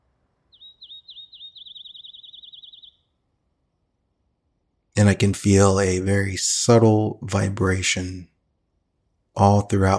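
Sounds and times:
bird singing outside: 0.0s - 3.3s
soft low hum: 0.0s - 9.9s
speech: 5.0s - 8.3s, 9.4s - 9.9s.

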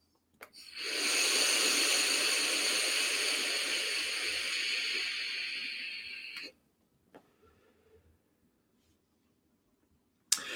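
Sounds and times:
person drawing hard on an e-cigarette vape set to 60 watts: 0.5s - 6.5s.

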